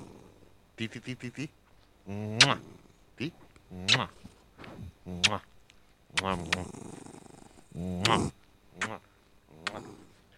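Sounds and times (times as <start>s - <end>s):
pet growling: 0.0s - 0.5s, 2.1s - 3.0s, 6.2s - 8.4s, 9.5s - 10.3s
speech: 0.8s - 4.4s, 5.0s - 5.5s, 6.1s - 7.0s, 7.8s - 9.1s.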